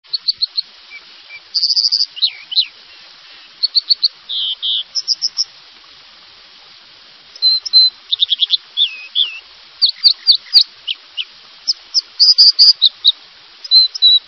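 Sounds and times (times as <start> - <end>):
American dipper calling: 0.1 - 5.6, 7.4 - 14.2.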